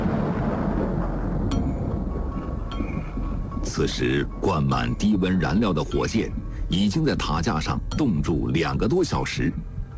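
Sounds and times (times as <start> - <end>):
sharp thunder crackles: 0.0 - 3.7
deep continuous rumble of thunder: 0.0 - 4.5
speech: 3.8 - 9.7.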